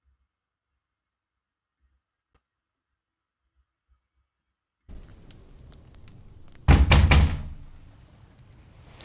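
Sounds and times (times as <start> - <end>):
quiet hiss: 0.0 - 9.0
loud heavy knocks on a door: 6.6 - 7.7.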